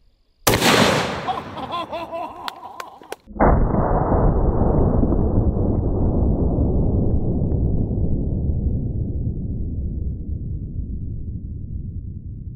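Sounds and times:
prototype gunshot rounds fired at a tub of sour cream: 0.5 - 1.6, 3.4 - 7.3
laughter: 1.2 - 3.2
heavy boom: 3.4 - 12.5.

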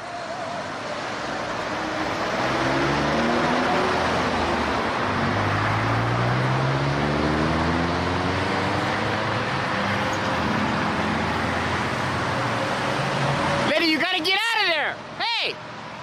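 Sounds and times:
road traffic roar with cars passing in traffic lanes: 0.0 - 16.0
person shouting a warning: 13.7 - 15.6.

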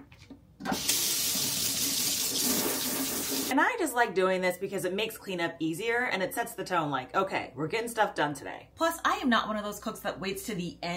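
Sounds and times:
hot water pouring from a kitchen tap into a sink: 0.7 - 3.5
speech: 3.5 - 10.9.

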